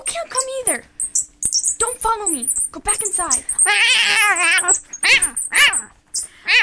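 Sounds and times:
speech: 0.7 - 1.0, 1.8 - 6.6
cat meowing: 3.6 - 5.9.

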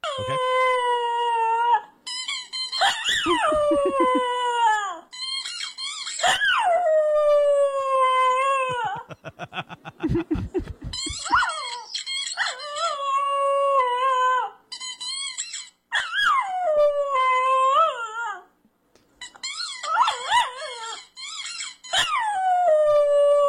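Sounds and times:
dog howling and whining: 0.0 - 2.0, 2.7 - 9.1, 10.8 - 14.6, 15.4 - 18.5, 19.5 - 23.4
squeezed squeaky toy squeaking: 2.0 - 6.6, 10.8 - 13.2, 14.7 - 18.1, 19.2 - 22.4
laughter: 3.2 - 4.3, 8.6 - 11.3.

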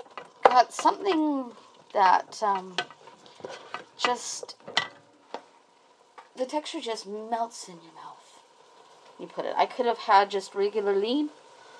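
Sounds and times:
stirring scrapes of extra lean chicken in a pan: 0.0 - 5.5
extra lean chicken sizzling in a pan: 0.0 - 11.7
speech: 0.5 - 4.6, 6.4 - 8.0, 9.2 - 11.4.

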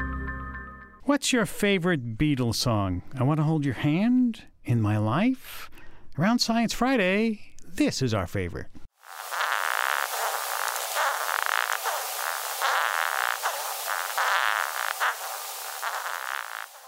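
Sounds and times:
speech: 1.1 - 8.8
horned Japanese rhinoceros beetle scraping rasp during courtship: 9.0 - 16.8.

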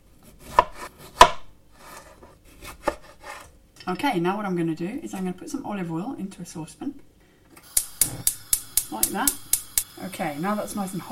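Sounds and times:
knife cutting vine tomatoes into quarters: 0.2 - 3.5
speech: 3.9 - 7.1, 9.0 - 11.1.

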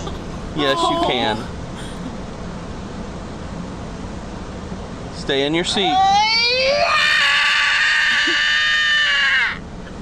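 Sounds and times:
speech: 0.6 - 1.6, 5.3 - 6.2
young boy's long high-pitched scream: 5.8 - 9.6.

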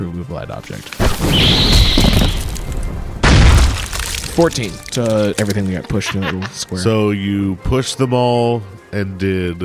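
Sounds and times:
speech: 0.0 - 2.9, 4.4 - 9.6
grenade explosion in a video game: 1.0 - 4.8
laughter: 5.7 - 6.8.

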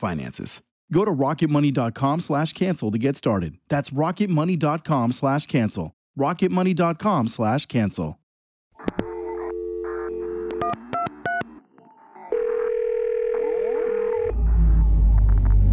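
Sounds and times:
speech: 0.0 - 8.2
telephone ringing tone: 8.8 - 11.4, 12.3 - 14.4
telephone keypad beeps: 8.8 - 11.5
telephone line hum: 8.8 - 14.4
low rumble: 14.3 - 15.7.

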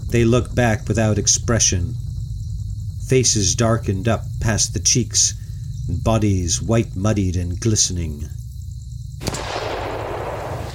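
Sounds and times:
speech: 0.1 - 2.0, 3.1 - 8.4, 9.2 - 9.5
gunshot: 9.2 - 10.7.

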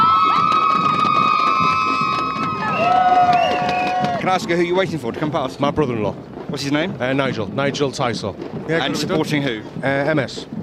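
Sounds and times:
cheerleading squad cheering for runners at a charity event: 0.0 - 4.2
sustained high whistle-like tones: 0.5 - 4.2
speech: 4.3 - 10.6.

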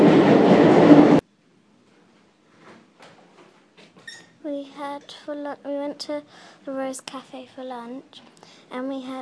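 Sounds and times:
metro train running along the rails: 0.0 - 1.2
speech: 4.5 - 9.1.

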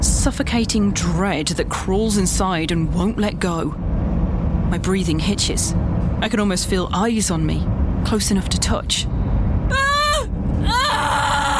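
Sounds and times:
steady rumble: 0.0 - 11.5
speech: 0.2 - 3.9, 4.7 - 9.2
woman screaming in a car: 9.7 - 11.5.

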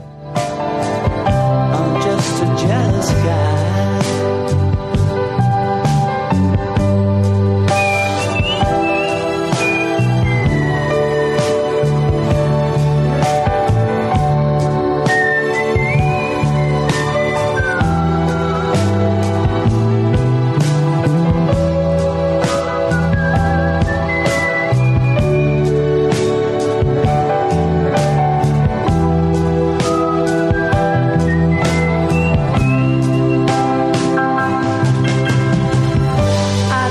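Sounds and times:
full loud band arrangement: 0.0 - 36.8
whistled melody: 7.6 - 12.7, 13.7 - 28.2, 29.3 - 35.6.

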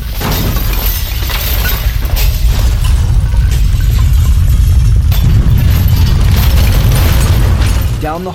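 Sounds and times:
glass crashing and shattering in a home shaken by a concussion: 0.0 - 8.3
deep rumbling roar of a concussion: 1.8 - 8.2.

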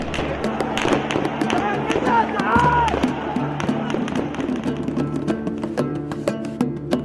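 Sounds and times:
gunshots fired by security forces: 0.0 - 4.9
indistinct shouting voices: 0.0 - 4.9
steady rumble of crowd noise: 0.0 - 7.0.

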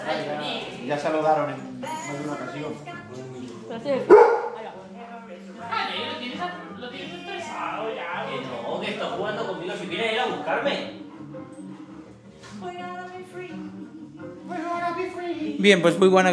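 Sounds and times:
speech: 0.1 - 4.4, 5.6 - 11.6, 14.5 - 16.3
two dogs barking and yipping: 4.0 - 4.6.

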